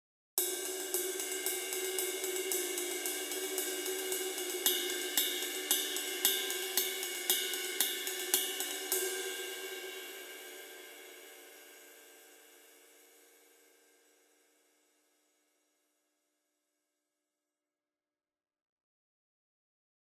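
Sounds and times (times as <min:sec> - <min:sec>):
20-inch sizzle ride cymbal: 0:00.4 - 0:13.2.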